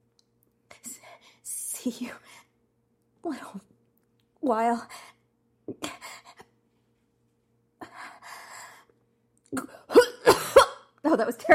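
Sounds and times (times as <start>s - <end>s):
speech: 0.8s - 2.4s, 3.2s - 3.7s, 4.4s - 5.0s, 11.1s - 11.5s
person acting out rasping and hacking coughs: 9.6s - 10.9s.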